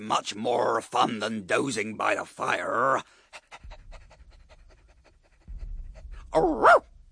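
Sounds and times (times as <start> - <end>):
speech: 0.0 - 3.6, 6.3 - 6.9
dog panting on a moonlit night walk: 3.2 - 6.4
low rumble: 3.5 - 7.1.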